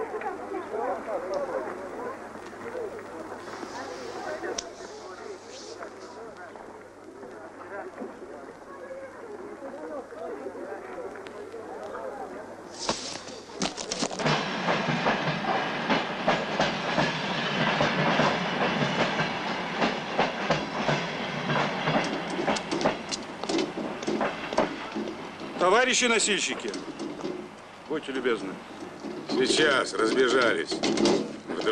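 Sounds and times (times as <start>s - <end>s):
quiet murmur: 0.0s - 31.7s
train wheels clattering over rails: 13.2s - 31.7s
speech: 25.8s - 26.9s, 28.0s - 28.7s, 29.4s - 31.7s.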